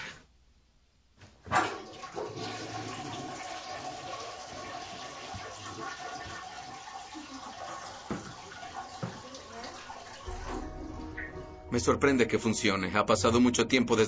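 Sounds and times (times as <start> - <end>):
toilet flushing after plumbing work: 1.5 - 11.4
toilet tank water rushing and swirling as it refills: 1.5 - 11.4
speech: 11.7 - 14.0.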